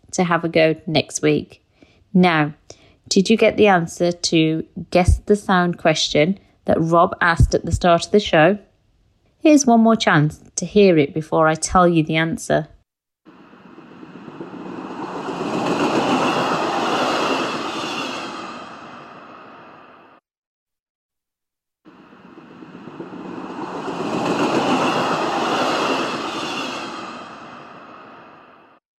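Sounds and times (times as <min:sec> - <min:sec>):
speech: 0:00.1 - 0:08.7, 0:09.4 - 0:12.7
passing train rumbling: 0:13.3 - 0:20.2, 0:21.9 - 0:28.8.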